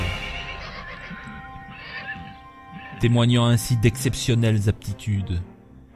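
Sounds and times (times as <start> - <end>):
horse neighing: 0.0 - 3.2
speech: 3.0 - 5.5.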